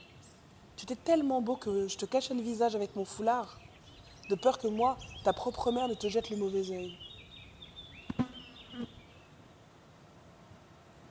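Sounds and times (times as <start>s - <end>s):
speech: 0.8s - 3.6s, 4.3s - 7.0s
fly buzzing over an island: 7.6s - 10.3s.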